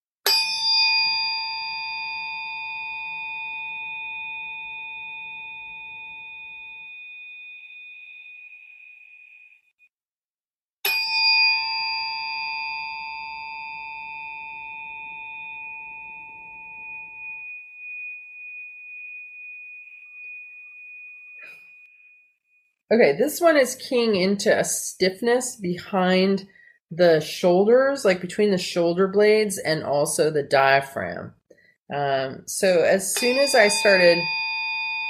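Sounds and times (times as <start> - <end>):
struck tuning fork ringing: 0.3 - 9.8, 10.9 - 22.7, 33.1 - 35.0
speech: 22.9 - 34.4.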